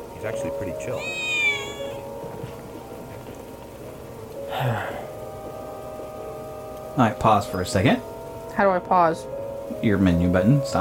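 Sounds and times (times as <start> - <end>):
speech: 0.2 - 1.3, 4.5 - 5.0, 7.0 - 10.8
cat meowing: 0.9 - 2.1.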